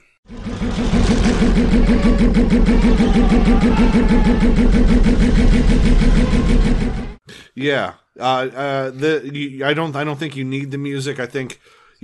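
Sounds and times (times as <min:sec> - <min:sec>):
podracer engine roaring in a film race sound mix: 0:00.3 - 0:07.2
speech: 0:00.8 - 0:03.0, 0:03.7 - 0:12.0.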